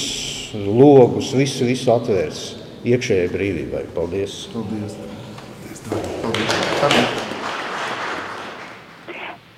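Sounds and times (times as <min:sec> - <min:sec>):
speech: 0:00.0 - 0:05.2, 0:05.8 - 0:06.1
audience applauding: 0:06.2 - 0:09.5.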